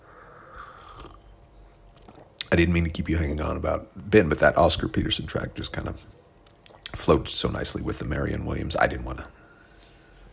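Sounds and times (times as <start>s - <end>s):
low steady hiss: 0.0s - 10.3s
sipping hot coffee: 0.2s - 1.3s
speech: 2.5s - 6.2s, 7.0s - 9.4s.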